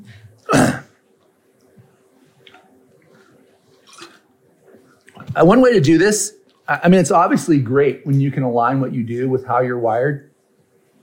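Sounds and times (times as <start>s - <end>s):
throat clearing for a tickle in the throat: 0.4s - 0.9s
speech: 5.4s - 10.3s.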